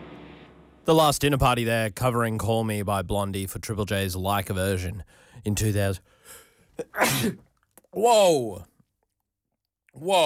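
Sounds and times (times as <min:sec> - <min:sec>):
speech: 0:00.8 - 0:08.7, 0:10.0 - 0:10.2
sneeze: 0:06.9 - 0:07.5.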